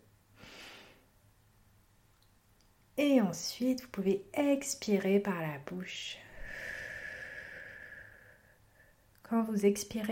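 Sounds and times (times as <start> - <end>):
deep airy inhale through the nose: 0.4 - 1.0, 6.3 - 9.0
speech: 3.0 - 6.7, 9.3 - 10.1.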